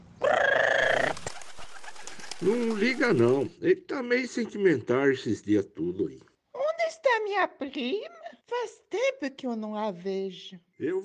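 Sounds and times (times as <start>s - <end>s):
parrot squawking: 0.2s - 2.9s
speech: 2.4s - 6.3s, 7.1s - 11.0s.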